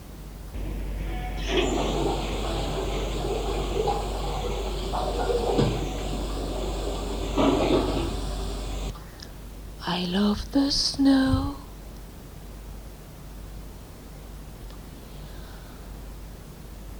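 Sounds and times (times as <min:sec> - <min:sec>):
steady pouring rain: 0:00.6 - 0:09.0
speech: 0:10.0 - 0:11.6.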